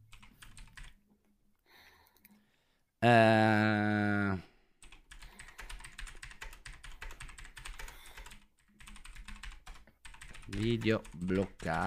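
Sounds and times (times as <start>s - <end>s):
typing a message on a computer keyboard: 0.1s - 1.0s, 4.8s - 11.8s
speech: 3.0s - 3.6s, 10.8s - 11.8s.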